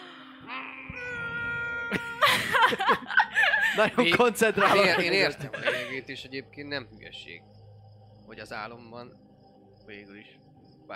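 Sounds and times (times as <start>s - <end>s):
small kitten meowing: 0.9s - 2.2s
speech: 1.9s - 2.1s, 2.7s - 3.2s, 3.8s - 7.6s, 8.3s - 9.2s, 9.9s - 10.9s
laughter: 1.9s - 6.1s.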